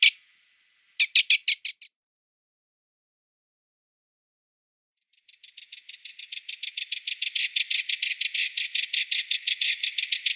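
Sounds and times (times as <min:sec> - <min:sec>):
Sardinian warbler calling: 0:00.0 - 0:00.2, 0:01.0 - 0:01.9, 0:05.2 - 0:10.3.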